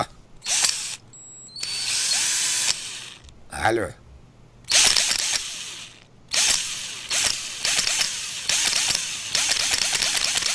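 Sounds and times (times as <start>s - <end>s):
cordless screwdriver whirring in a workshop: 0.4s - 1.0s, 1.6s - 3.3s, 4.7s - 10.5s
speech: 3.6s - 4.0s.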